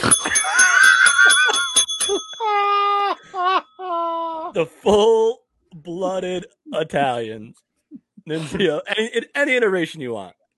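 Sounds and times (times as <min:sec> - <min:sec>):
small bell ringing: 0:00.0 - 0:02.8
speech: 0:04.6 - 0:10.5.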